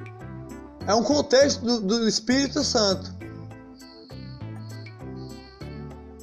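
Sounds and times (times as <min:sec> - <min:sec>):
speech: 0:00.8 - 0:03.2
cricket chirping: 0:03.7 - 0:05.6.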